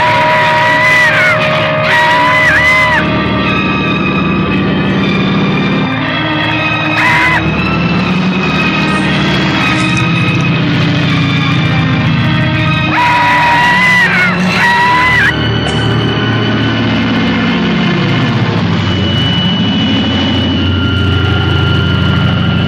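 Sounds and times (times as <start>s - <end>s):
man screaming and yelling inside a flying airplane: 0.0s - 3.1s, 6.9s - 7.5s, 12.8s - 15.4s
aircraft engine roaring and whining in flight: 0.0s - 22.6s.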